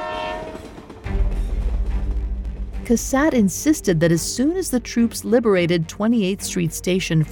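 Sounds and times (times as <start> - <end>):
train horn blaring: 0.0 - 1.0
train rolling into station with rhythmic rail clatter: 0.0 - 3.2
speech: 2.9 - 7.3.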